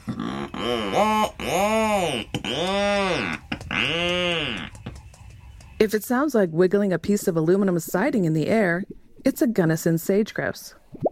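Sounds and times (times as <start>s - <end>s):
Rhinoceros Auklet giving deep groaning moan-like calls: 0.0s - 5.5s
speech: 5.8s - 10.8s.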